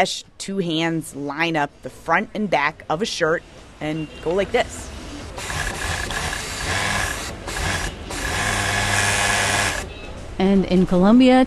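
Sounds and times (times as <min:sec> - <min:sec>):
speech: 0:00.0 - 0:05.7, 0:10.4 - 0:11.4
sewing machine stitching fabric: 0:05.4 - 0:09.9.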